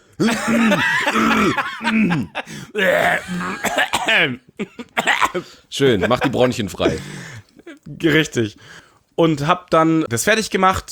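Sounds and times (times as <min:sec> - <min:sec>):
laughter: 0:00.2 - 0:03.6, 0:05.8 - 0:07.2
person clearing throat: 0:00.2 - 0:05.4
speech: 0:00.2 - 0:10.8.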